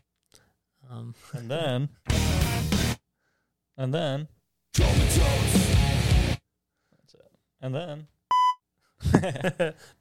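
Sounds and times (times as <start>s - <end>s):
speech: 1.1s - 2.8s, 3.8s - 5.6s, 7.1s - 8.1s, 9.0s - 9.9s
short electronic beep from a pressed button: 8.3s - 8.6s.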